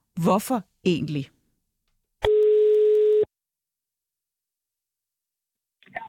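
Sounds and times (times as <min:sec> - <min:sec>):
speech: 0:00.2 - 0:01.4
telephone ringing tone of an outgoing call: 0:02.2 - 0:03.3.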